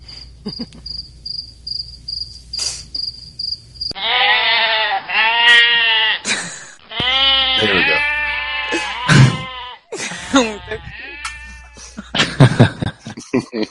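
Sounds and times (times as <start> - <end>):
crickets chirping: 0.0 - 4.0
laughter: 0.4 - 0.9, 6.2 - 6.8, 8.7 - 10.9, 11.6 - 13.6
speech: 0.4 - 1.1
goats bleating: 4.0 - 6.3, 6.9 - 12.0.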